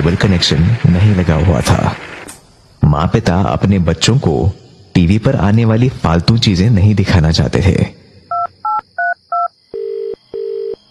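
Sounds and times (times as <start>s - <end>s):
speech: 0.0s - 2.2s, 2.8s - 8.0s
telephone ringback tones as the call connects: 8.3s - 10.8s.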